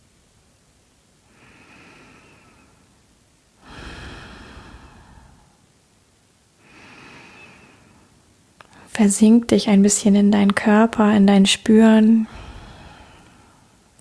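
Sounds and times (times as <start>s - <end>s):
slow deep breathing during a guided eyes-closed relaxation exercise: 1.3s - 5.8s, 6.6s - 8.9s, 12.3s - 13.9s
speech: 9.0s - 12.4s.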